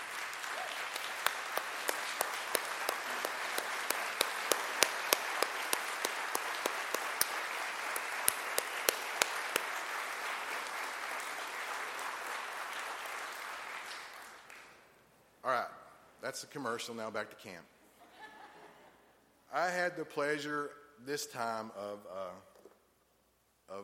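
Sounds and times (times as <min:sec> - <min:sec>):
crowd applause: 0:00.0 - 0:14.8
speech: 0:16.3 - 0:17.8, 0:19.6 - 0:22.5.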